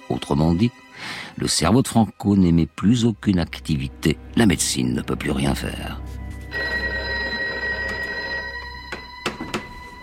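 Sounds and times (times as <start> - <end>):
speech: 0.1 - 6.2
old telephone bell ringing: 6.5 - 10.0.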